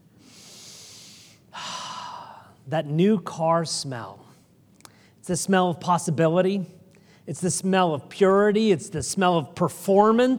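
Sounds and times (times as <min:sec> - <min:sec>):
person breathing in through the nose in a car: 0:00.2 - 0:02.6
speech: 0:02.7 - 0:04.2, 0:05.3 - 0:10.3.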